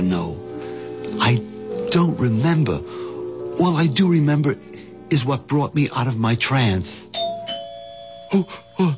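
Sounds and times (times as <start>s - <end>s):
speech: 1.3s - 3.0s, 3.6s - 7.1s, 8.3s - 8.9s
doorbell chime: 7.1s - 8.9s.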